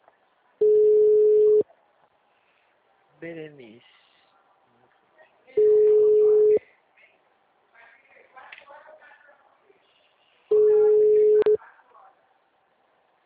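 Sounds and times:
phone ringing tones from an unanswered call: 0.6 - 1.6, 5.6 - 6.6, 10.5 - 11.6
people talking quietly: 1.6 - 12.5
speech: 3.2 - 4.0.

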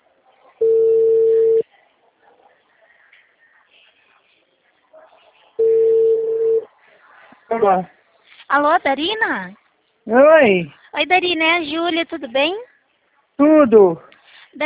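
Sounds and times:
ringback tone of an outgoing telephone call: 0.6 - 1.6, 5.6 - 6.6
speech: 7.6 - 12.7, 13.4 - 14.6.

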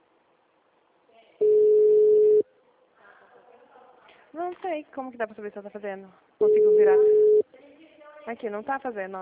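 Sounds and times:
telephone call tone for a number not answering: 1.4 - 2.4, 6.4 - 7.4
speech: 4.5 - 7.3, 8.2 - 9.2.

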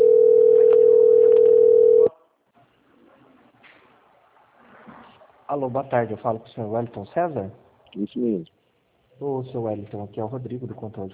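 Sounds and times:
telephone tone during bank call transfer: 0.0 - 2.1
speech: 5.6 - 8.6, 9.2 - 11.1.

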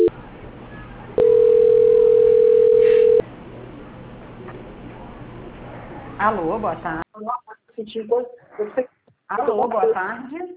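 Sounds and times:
steady mid-pitched telephone tone during bank call transfer: 1.2 - 3.2
speech: 6.2 - 10.5.

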